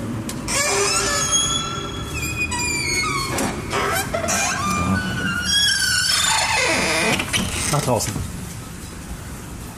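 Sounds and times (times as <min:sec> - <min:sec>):
outside door creaking open with a long squeal: 0:00.3 - 0:08.2
speech: 0:07.8 - 0:08.4.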